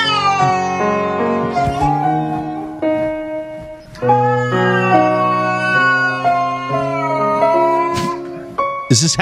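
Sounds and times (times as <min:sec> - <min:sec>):
recorded cat meows scored to piano music: 0:00.0 - 0:02.2, 0:04.0 - 0:08.4
steady piano accompaniment: 0:00.0 - 0:09.1.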